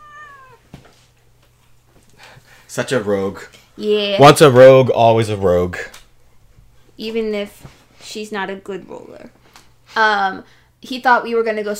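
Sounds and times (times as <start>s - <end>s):
cat meowing: 0.0s - 0.6s
speech: 2.7s - 6.0s, 7.0s - 9.4s, 10.0s - 11.7s.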